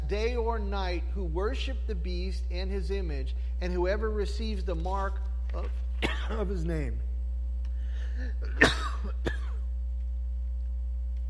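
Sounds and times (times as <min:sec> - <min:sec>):
steady low electrical hum: 0:00.0 - 0:11.2
speech: 0:00.1 - 0:07.1, 0:08.2 - 0:09.4
person coughing: 0:06.0 - 0:06.6, 0:08.1 - 0:09.6.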